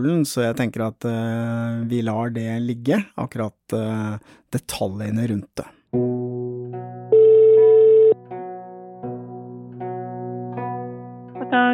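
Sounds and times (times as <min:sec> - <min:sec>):
speech: 0:00.0 - 0:06.2
electronic telephone ringing tone of an outgoing call to the police: 0:07.1 - 0:08.2.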